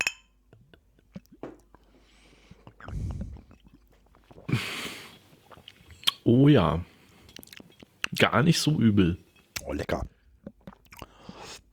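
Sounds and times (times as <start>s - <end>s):
glasses of lemonade clinking in a toast: 0.0s - 0.4s
soft rumble: 2.8s - 3.6s
speech: 6.3s - 6.9s, 8.2s - 10.1s.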